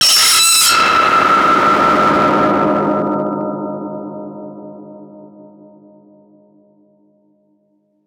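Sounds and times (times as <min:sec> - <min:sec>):
distorted impact: 0:00.0 - 0:03.3.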